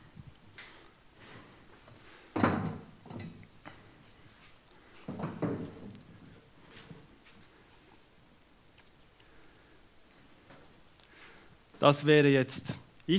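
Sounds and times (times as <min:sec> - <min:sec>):
chair set down with a clattering thump: 0:02.4 - 0:03.4, 0:05.1 - 0:05.8
speech: 0:11.8 - 0:13.1.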